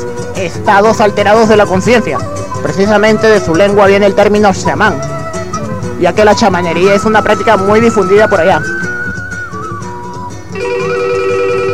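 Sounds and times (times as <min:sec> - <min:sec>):
speech: 0:00.4 - 0:05.1, 0:06.0 - 0:08.8
telephone ringing with an incoming call on a radio call-in line: 0:10.6 - 0:11.7.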